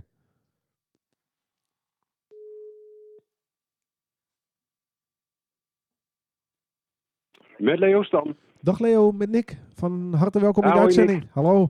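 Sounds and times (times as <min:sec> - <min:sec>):
telephone tone on an outgoing call being dialed: 0:02.3 - 0:03.2
speech: 0:07.6 - 0:11.6.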